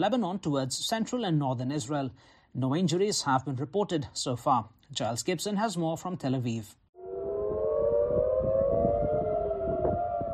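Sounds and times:
speech: 0:00.0 - 0:06.8
air raid sirens wailing across central Tel Aviv Israel: 0:07.0 - 0:10.3.

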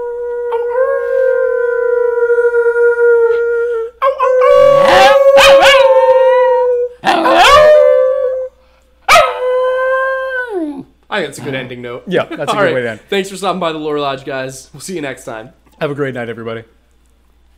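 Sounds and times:
dog howling: 0:00.0 - 0:08.5, 0:09.1 - 0:10.9
dog yipping: 0:04.0 - 0:06.0, 0:07.0 - 0:07.8, 0:09.1 - 0:09.4
speech: 0:11.2 - 0:16.8.

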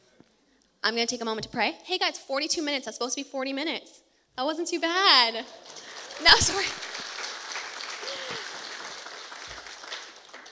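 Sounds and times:
speech: 0:00.8 - 0:06.9
laughter: 0:05.4 - 0:10.3
audience applause: 0:05.4 - 0:10.5.

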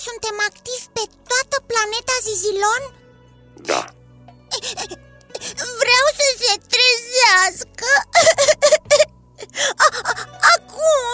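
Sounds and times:
speech: 0:00.0 - 0:03.0, 0:03.6 - 0:11.1
girl sobbing: 0:04.5 - 0:05.8, 0:07.8 - 0:11.1.

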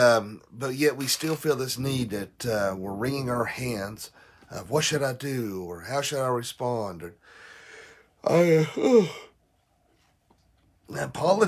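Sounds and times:
speech: 0:00.0 - 0:07.4, 0:08.2 - 0:09.3, 0:10.9 - 0:11.4
person yawning in the morning: 0:08.2 - 0:09.4.

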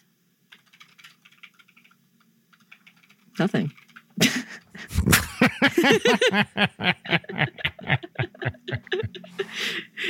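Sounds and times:
low steady hum: 0:00.0 - 0:10.0
keyboard typing: 0:00.5 - 0:04.2
speech: 0:03.4 - 0:04.6, 0:05.6 - 0:08.0
laughter: 0:04.2 - 0:10.0.

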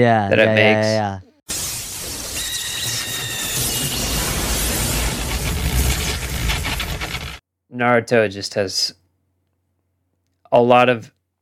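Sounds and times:
speech: 0:00.0 - 0:01.6, 0:07.7 - 0:09.0, 0:10.5 - 0:11.2
dense loud electric crackling of a lightning attack sound effect: 0:01.5 - 0:07.4
high shrill screaming chirping bird-like tones: 0:01.9 - 0:05.1.

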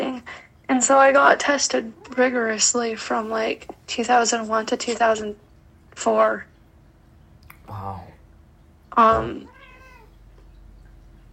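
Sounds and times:
speech: 0:00.7 - 0:05.4, 0:06.0 - 0:06.5, 0:07.7 - 0:08.1, 0:09.0 - 0:09.5
cat meowing: 0:09.1 - 0:10.2.

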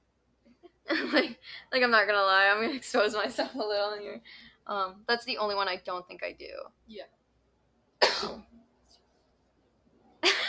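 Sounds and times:
speech: 0:00.9 - 0:07.2
person coughing: 0:08.0 - 0:08.5.

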